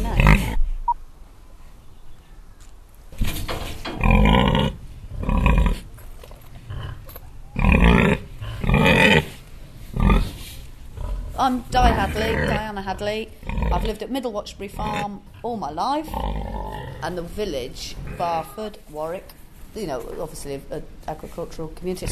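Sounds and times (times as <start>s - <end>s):
pig grunting on a farm in Warwickshire: 0.0s - 0.6s, 3.9s - 5.9s, 6.6s - 14.0s, 14.6s - 18.6s, 22.0s - 22.1s
speech: 11.4s - 22.1s.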